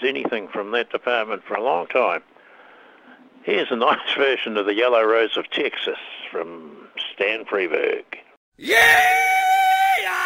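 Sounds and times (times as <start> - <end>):
speech: 0.3 - 2.3, 3.4 - 9.3
person giving a rebel yell: 8.6 - 10.2.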